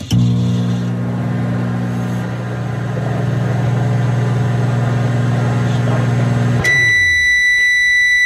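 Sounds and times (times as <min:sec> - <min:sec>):
microwave oven humming with a low motorized drone: 0:00.0 - 0:08.2
microwave oven high electronic beep: 0:06.6 - 0:08.2.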